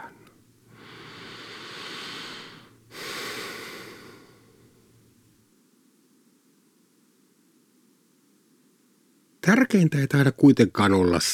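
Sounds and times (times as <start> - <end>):
deep inhale and slow exhale: 0.0 - 5.2
speech: 9.5 - 11.3.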